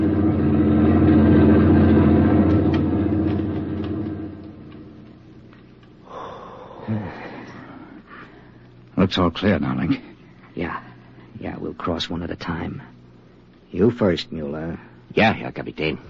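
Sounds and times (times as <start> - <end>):
heavy German army lorry rumbling past on a highway: 0.0 - 5.0
faint small noises: 0.0 - 16.0
speech: 9.1 - 13.0, 13.7 - 16.0.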